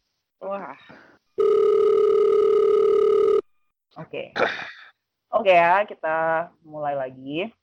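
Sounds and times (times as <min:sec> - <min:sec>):
speech: 0:00.4 - 0:01.1, 0:05.4 - 0:07.6
telephone ringback tone during outgoing call: 0:01.4 - 0:03.4.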